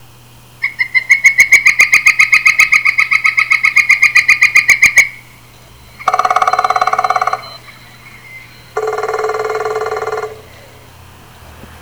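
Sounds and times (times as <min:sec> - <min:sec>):
Northern Flicker: 0:00.0 - 0:11.7.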